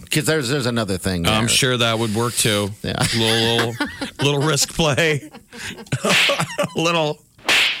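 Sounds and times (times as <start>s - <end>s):
speech: 0.2s - 7.2s
laughter: 3.0s - 7.0s
sharp loud slap sound effect: 6.1s - 6.5s, 7.4s - 7.7s.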